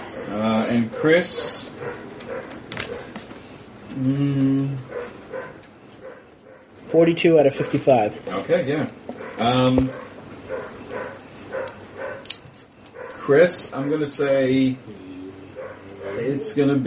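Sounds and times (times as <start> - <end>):
dog barking and yipping: 0.2 - 3.1, 4.9 - 6.8, 9.2 - 12.3, 12.9 - 13.4, 15.6 - 16.6
speech: 0.3 - 1.6, 4.0 - 5.0, 6.9 - 10.0, 13.3 - 15.1, 16.2 - 16.8.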